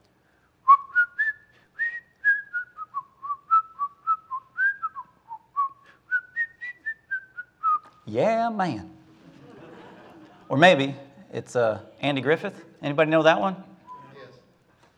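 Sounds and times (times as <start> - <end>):
person whistling a lively melody: 0.6 - 8.0, 13.9 - 14.2
speech: 8.1 - 9.0, 10.5 - 13.7
laughter: 9.0 - 12.6.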